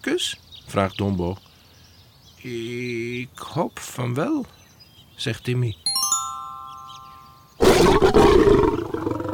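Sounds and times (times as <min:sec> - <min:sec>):
speech: 0:00.0 - 0:01.5, 0:02.4 - 0:04.6, 0:05.2 - 0:05.8
faint ringing chiming tone: 0:05.9 - 0:07.6
lion in Africa roaring: 0:07.6 - 0:09.3.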